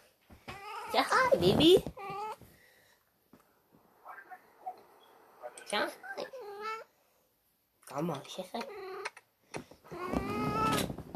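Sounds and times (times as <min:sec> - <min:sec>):
soft taps and rustles: 0:00.0 - 0:02.6, 0:09.5 - 0:11.1
cat meowing: 0:00.5 - 0:02.4, 0:06.0 - 0:06.9, 0:09.9 - 0:10.9
speech: 0:00.9 - 0:02.0, 0:05.7 - 0:06.3, 0:07.9 - 0:08.8.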